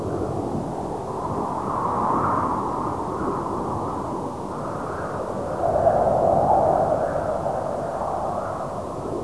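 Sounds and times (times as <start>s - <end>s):
desert wind: 0.0s - 9.2s.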